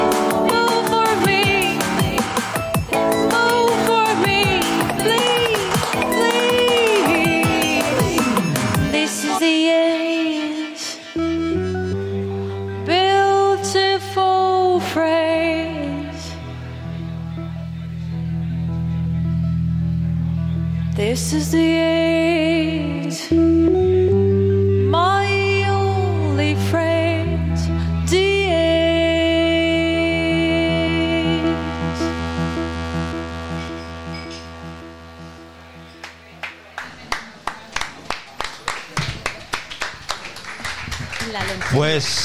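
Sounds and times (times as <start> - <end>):
live music medley with sustained melodic tones and singing: 0.0 - 37.1
speech: 21.2 - 21.7
light scattered clapping from a small audience: 36.0 - 42.2.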